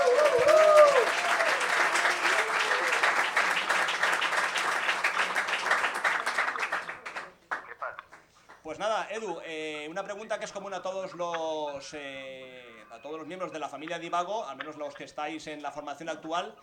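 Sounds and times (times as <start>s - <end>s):
people cheering: 0.0s - 8.0s
applause from a group: 0.0s - 8.7s
speech: 9.1s - 16.6s.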